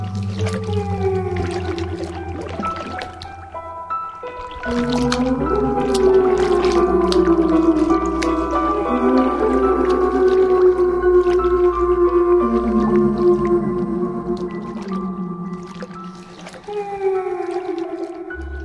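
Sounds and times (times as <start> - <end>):
layered whale calls moaning and gliding in pitch: 0.0 - 18.6
watery drips: 0.0 - 18.6.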